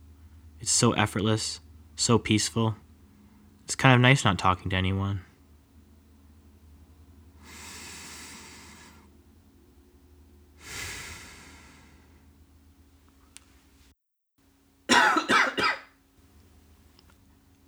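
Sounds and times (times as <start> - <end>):
speech: 0.6 - 2.8, 3.7 - 5.3
slow breathing in and out through the nostrils during eyes-closed meditation: 7.3 - 9.2, 10.6 - 12.4.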